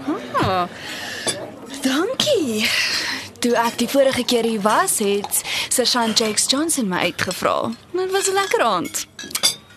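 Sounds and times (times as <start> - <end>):
speech: 0.5 - 1.0, 1.8 - 9.3
glasses clinking in a toast: 1.2 - 1.9, 7.6 - 9.7.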